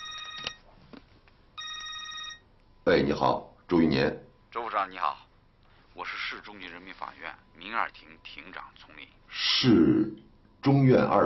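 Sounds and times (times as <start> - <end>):
telephone ringing at home with a high electronic trill: 0.0 - 0.7, 1.6 - 2.5
speech: 2.9 - 4.2, 4.8 - 5.2, 6.0 - 11.2.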